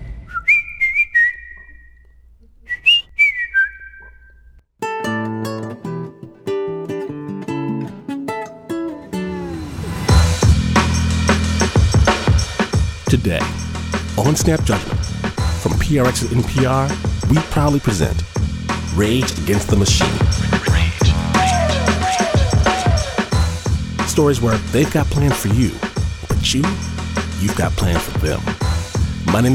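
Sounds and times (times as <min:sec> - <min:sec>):
person whistling a short bouncy melody: 0:00.3 - 0:02.0, 0:02.7 - 0:04.5, 0:21.3 - 0:23.3
instrumental music track: 0:04.8 - 0:15.6, 0:20.0 - 0:24.1
speech: 0:14.3 - 0:14.9, 0:15.6 - 0:18.3, 0:18.9 - 0:20.4, 0:24.2 - 0:25.9, 0:26.4 - 0:28.5, 0:29.3 - 0:29.5.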